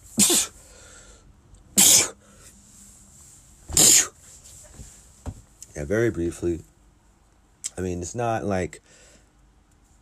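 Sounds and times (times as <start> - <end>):
person sneezing: 0.1 - 0.6, 1.8 - 2.2, 3.7 - 4.2
speech: 5.8 - 6.7, 7.8 - 8.8.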